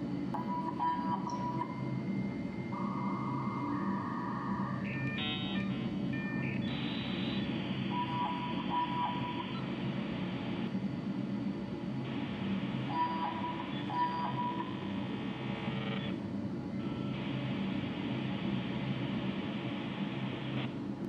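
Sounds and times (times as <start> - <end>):
technological ambience: 0.2 - 21.0.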